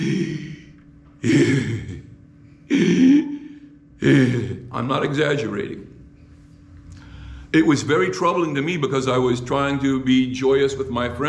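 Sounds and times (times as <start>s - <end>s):
voice imitating the labored wheezy breathing of a man with last-stage emphysema: 0.0s - 2.0s, 2.7s - 4.7s
speech: 1.2s - 2.0s, 4.0s - 5.9s, 7.5s - 11.2s.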